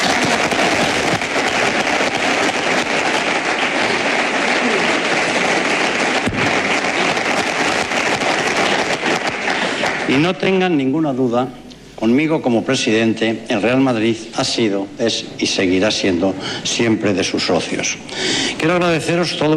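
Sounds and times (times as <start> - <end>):
large crowd applauding: 0.0 - 10.7
speech: 10.1 - 19.5.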